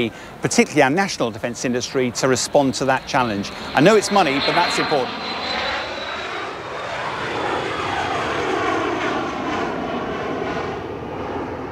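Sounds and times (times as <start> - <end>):
speech: 0.0 - 5.6
jet aircraft taking off from the airfield at Farnborough: 0.0 - 11.6.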